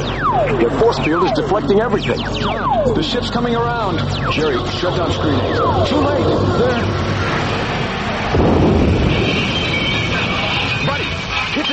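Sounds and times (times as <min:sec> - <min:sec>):
speech: 0:00.4 - 0:07.4, 0:08.3 - 0:08.8
thunder crash from a lightning strike: 0:05.4 - 0:11.7.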